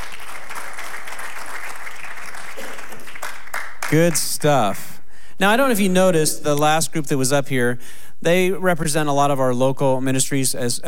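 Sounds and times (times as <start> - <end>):
audience applause welcoming representatives of local ministries: 0.0 - 4.2
speech: 3.9 - 10.8.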